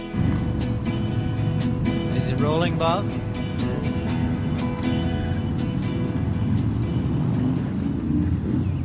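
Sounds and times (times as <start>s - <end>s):
motorcycle engines rumbling in Merrickville along Highway 43: 0.1s - 8.8s
speech: 2.4s - 3.3s.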